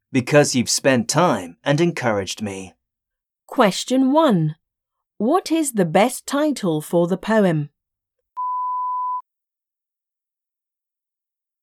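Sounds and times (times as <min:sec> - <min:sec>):
speech: 0:00.1 - 0:02.8, 0:03.5 - 0:04.6, 0:05.2 - 0:07.7
electronic exam answer-prompt beep: 0:08.4 - 0:09.2.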